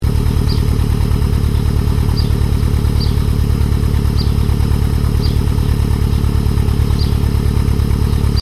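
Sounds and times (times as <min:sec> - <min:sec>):
car engine idling with cat-back exhaust: 0:00.0 - 0:08.4.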